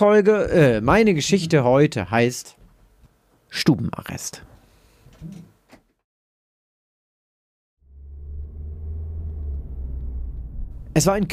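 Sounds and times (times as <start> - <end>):
speech: 0.0 - 2.6, 3.5 - 4.5, 5.2 - 5.5, 11.0 - 11.3
car driving along a wet road: 8.1 - 11.0.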